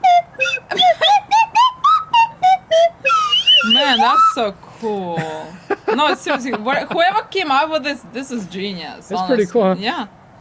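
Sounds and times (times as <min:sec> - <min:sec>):
trombone-style sliding whistle toots: 0:00.0 - 0:04.5
laughter: 0:00.4 - 0:01.6, 0:04.8 - 0:07.4
speech: 0:03.9 - 0:10.2.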